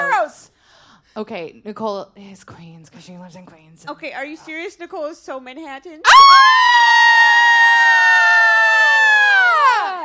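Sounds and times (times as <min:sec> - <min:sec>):
speech: 0:01.2 - 0:07.6
live audience screaming and cheering: 0:06.1 - 0:10.0.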